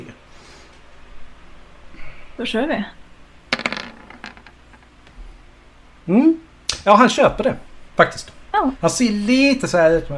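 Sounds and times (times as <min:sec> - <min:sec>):
speech: 0:02.4 - 0:03.0, 0:06.1 - 0:10.1
ten-sided dice clattering on a table: 0:03.5 - 0:04.9.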